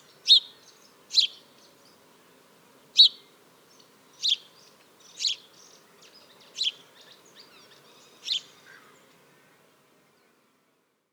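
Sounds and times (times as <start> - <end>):
house sparrow chirping: 0.2 - 0.5, 1.1 - 1.5, 3.0 - 3.2, 4.2 - 5.7.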